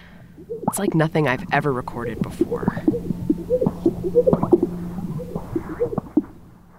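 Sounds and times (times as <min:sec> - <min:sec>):
steady low hum: 0:00.0 - 0:06.7
speech: 0:00.5 - 0:04.6
male bird's air-sac mating display calls: 0:02.0 - 0:06.3.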